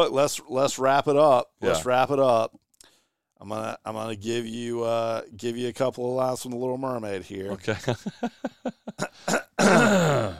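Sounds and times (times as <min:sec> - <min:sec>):
speech: 0:00.0 - 0:02.6, 0:03.4 - 0:10.3
person clearing throat gruffly: 0:09.0 - 0:10.3.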